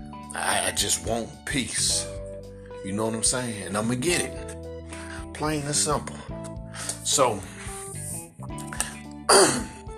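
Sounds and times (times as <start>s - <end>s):
speech: 0.4s - 2.2s, 2.8s - 4.7s, 5.4s - 6.4s, 7.1s - 7.6s
loud rough throat clearing: 8.7s - 9.8s.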